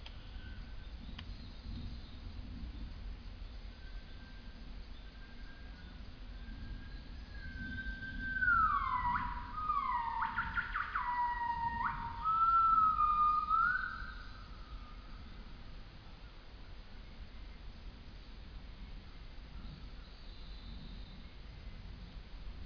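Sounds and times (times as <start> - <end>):
male Nomascus gabriellae calling: 7.7 - 14.3.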